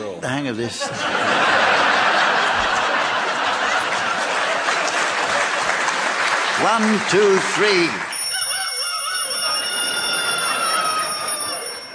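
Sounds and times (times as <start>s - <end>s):
speech: 0.2s - 1.4s, 6.6s - 8.1s
laughter: 0.7s - 7.4s, 8.3s - 11.9s
metallic bell ringing: 8.1s - 11.9s.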